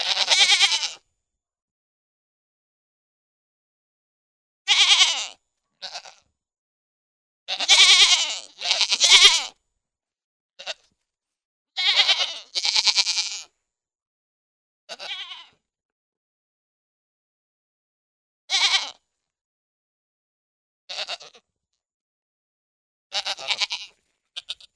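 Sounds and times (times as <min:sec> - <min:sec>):
goat giving wavering nasal bleats: 0:00.0 - 0:01.0, 0:04.7 - 0:06.3, 0:07.5 - 0:09.6, 0:10.6 - 0:10.9, 0:11.8 - 0:13.5, 0:14.9 - 0:15.6, 0:18.5 - 0:19.0, 0:20.9 - 0:21.5, 0:23.1 - 0:24.7.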